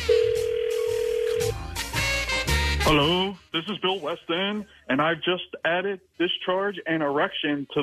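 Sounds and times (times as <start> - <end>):
outgoing phone call ringback tone: 0.1 - 1.7
speech: 2.9 - 7.8.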